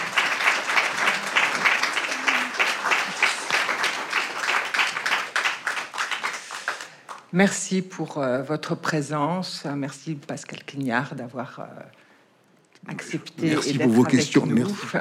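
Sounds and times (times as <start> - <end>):
audience applause: 0.0 - 7.2
speech: 7.3 - 12.0, 12.8 - 14.9.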